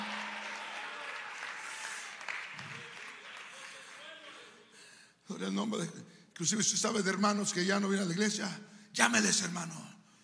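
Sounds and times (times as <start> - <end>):
audience applauding: 0.0 - 4.7
speech: 5.3 - 9.9.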